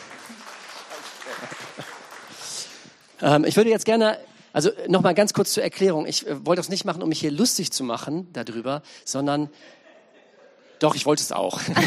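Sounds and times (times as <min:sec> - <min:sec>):
crowd applauding: 0:00.0 - 0:03.2
laughter: 0:00.3 - 0:02.4, 0:09.6 - 0:11.8
speech: 0:03.2 - 0:09.8, 0:10.8 - 0:11.8.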